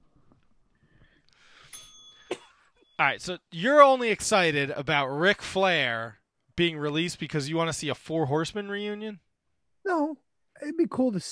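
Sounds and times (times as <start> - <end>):
bell struck with bright metallic tone: 1.6 - 3.0
speech: 3.0 - 9.2, 9.8 - 11.3.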